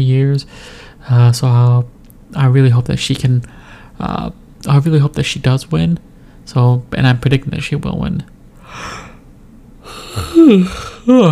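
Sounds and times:
speech: 0.0 - 9.0, 10.4 - 11.3
person yawning: 9.8 - 11.3.

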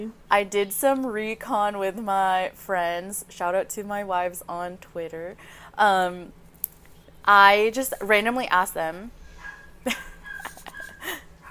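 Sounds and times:
speech: 0.0 - 6.4, 7.2 - 9.2, 9.8 - 10.1
dogs yipping and whimpering faintly: 9.3 - 11.5.

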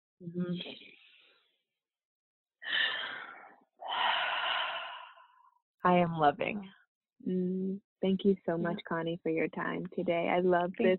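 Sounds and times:
speech: 0.2 - 1.0, 5.8 - 10.9
people taking a deep breath together during a guided pause: 2.7 - 5.3.

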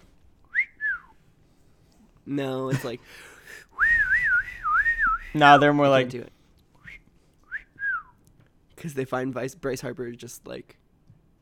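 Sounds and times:
wolf whistle by a person: 0.5 - 1.2, 3.8 - 5.4, 6.8 - 8.2
speech: 2.3 - 3.7, 5.3 - 6.4, 8.8 - 10.8.

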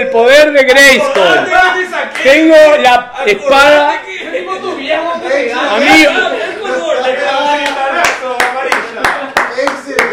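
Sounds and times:
speech: 0.1 - 4.0, 4.8 - 7.0
sharp hand claps: 2.0 - 2.5, 7.5 - 10.1
laughter: 3.2 - 10.1.

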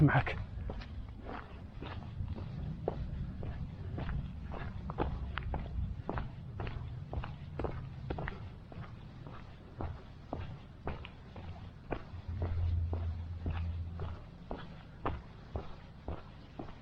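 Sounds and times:
speech: 0.0 - 0.5
low rumble: 0.0 - 16.7
running footsteps: 0.0 - 16.7.

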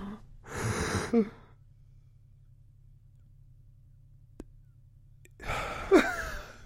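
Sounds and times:
person demonstrating SAS-style controlled breathing: 0.0 - 1.6, 5.4 - 6.6
low hum: 0.0 - 6.6.

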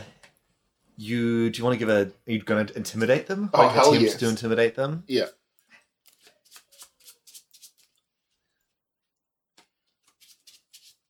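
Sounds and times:
speech: 1.0 - 5.4
deck of cards being riffle-shuffled: 6.1 - 8.0, 10.0 - 11.0.

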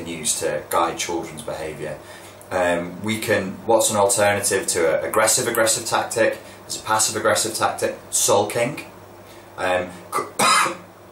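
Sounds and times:
speech: 0.2 - 8.9, 9.6 - 10.8
person with a constricted throat clearing throat and coughing: 10.1 - 10.9.

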